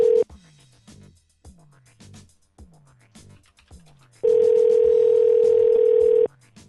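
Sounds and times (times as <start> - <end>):
unanswered telephone ringing on the line: 0.0 - 0.2, 4.3 - 6.3.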